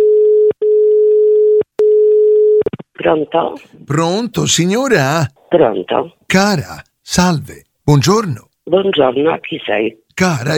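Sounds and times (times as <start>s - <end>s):
telephone line tone as a call is placed: 0.0s - 2.6s
speech: 3.0s - 10.5s.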